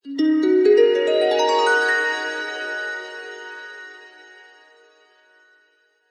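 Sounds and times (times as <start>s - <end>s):
dreamy washy harp glissando: 0.1s - 4.7s.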